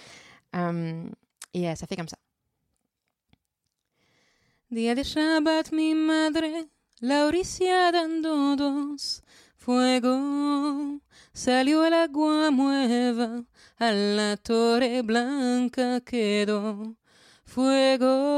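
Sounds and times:
speech: 0.7 - 2.2, 4.7 - 18.3
woman singing a Judeo-Spanish Ladino song: 4.7 - 18.3.

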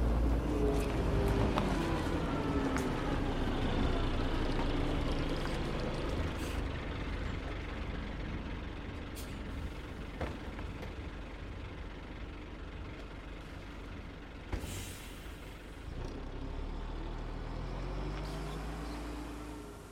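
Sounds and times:
bus engine rumbling: 0.0 - 19.9
bus air brakes releasing with a sharp hiss: 6.4 - 6.7, 14.5 - 15.8.

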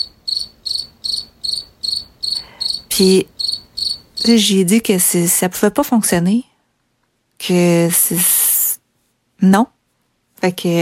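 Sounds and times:
crickets chirping: 0.0 - 4.5
speech: 3.0 - 3.4, 4.2 - 6.5, 7.4 - 8.3, 9.4 - 9.8, 10.4 - 10.8.

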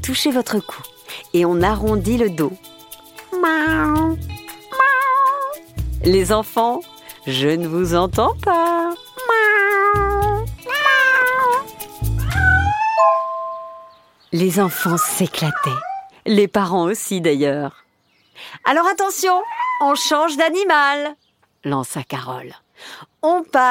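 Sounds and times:
speech: 0.0 - 2.7, 3.4 - 4.3, 6.0 - 9.0, 14.3 - 17.8, 18.4 - 23.7
people imitating cats with drawn-out wavering meows: 4.7 - 5.6, 9.2 - 13.0.

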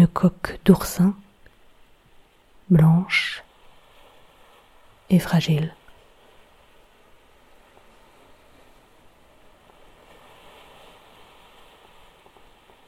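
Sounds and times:
speech: 0.0 - 1.2, 2.7 - 3.4, 5.1 - 5.8
rough sea surf roaring: 0.8 - 12.8
rough sea waves breaking against rocks: 3.2 - 5.1, 5.8 - 12.8.

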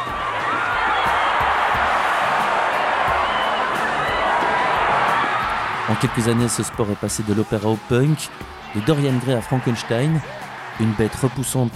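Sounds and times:
dense roaring partisan crowd cheering and shouting: 0.0 - 11.7
speech: 5.9 - 11.7.

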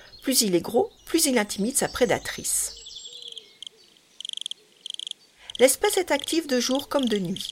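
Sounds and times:
speech: 0.2 - 2.8, 5.6 - 7.5
faint bird calls: 2.7 - 6.4
wood cricket stridulating by rubbing its wings: 3.2 - 6.4, 7.0 - 7.5.

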